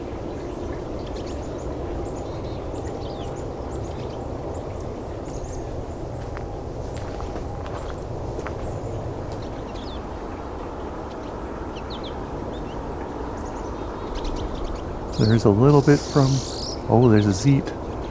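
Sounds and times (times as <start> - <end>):
flock of pine siskins, goldfinches and purple finch calling: 0.0 - 18.1
high thin chirps and twitters of siskins and finches: 15.2 - 16.8
speech: 15.2 - 17.8.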